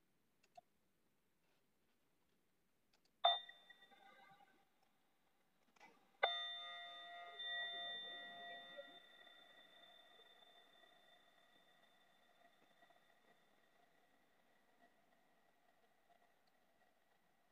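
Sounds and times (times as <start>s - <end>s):
meditation bell struck with clear shimmering tone: 6.2s - 12.6s.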